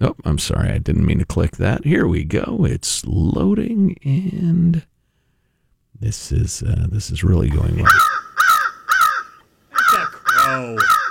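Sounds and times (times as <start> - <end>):
speech: 0.0 - 4.9, 6.0 - 8.2, 10.5 - 11.0
bald eagle harsh raspy cries: 7.5 - 11.0.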